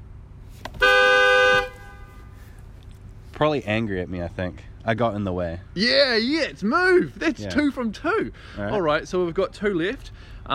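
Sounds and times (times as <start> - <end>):
car horn toot: 0.8 - 2.5
speech: 3.4 - 10.5.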